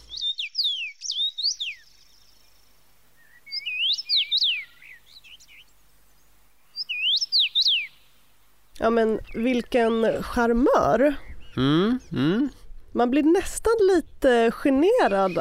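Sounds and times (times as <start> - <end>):
common rosefinch whistling song: 0.0 - 2.3, 3.2 - 5.7, 6.7 - 8.0, 14.9 - 15.3
speech: 8.8 - 15.3.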